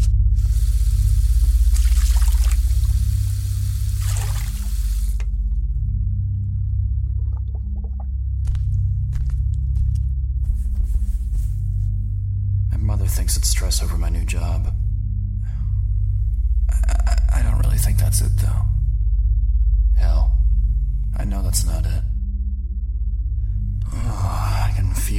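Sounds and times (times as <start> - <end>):
steady low hum: 0.0 - 25.1
bathroom sink faucet running: 0.4 - 5.3
person splashing water on their face: 0.4 - 5.4
footsteps to sink: 8.4 - 12.1
speech: 13.7 - 14.8, 18.1 - 18.8, 21.2 - 22.1.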